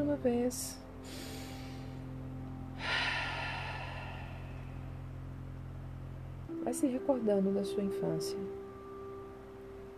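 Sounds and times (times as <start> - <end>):
speech: 0.1 - 1.2, 6.7 - 8.6
deep slow breathing in and out during a relaxation breathing exercise: 1.0 - 5.2.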